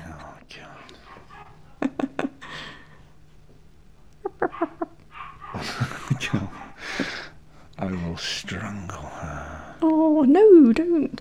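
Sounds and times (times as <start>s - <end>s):
soft murmured voices: 0.0s - 11.2s
small dog barking: 0.8s - 2.1s, 4.2s - 6.8s
laughter: 0.9s - 3.2s, 4.2s - 8.2s
speech: 10.2s - 11.2s.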